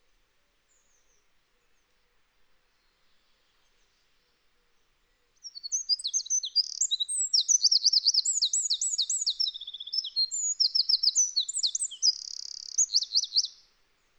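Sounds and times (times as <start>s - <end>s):
Eurasian wren Troglodytes troglodytes singing: 5.5s - 13.6s.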